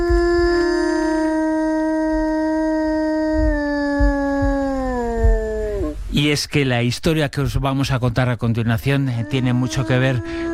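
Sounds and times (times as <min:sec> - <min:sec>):
wolf howling, calling its family: 0:00.0 - 0:06.1, 0:09.2 - 0:10.5
low rumble of wind or handling noise: 0:00.0 - 0:08.0
speech: 0:06.2 - 0:10.5.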